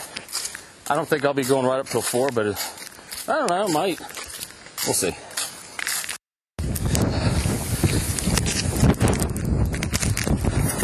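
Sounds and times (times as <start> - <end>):
speech: 0.9 - 4.2, 4.8 - 5.3
strong gusting wind buffeting the microphone: 6.6 - 10.8.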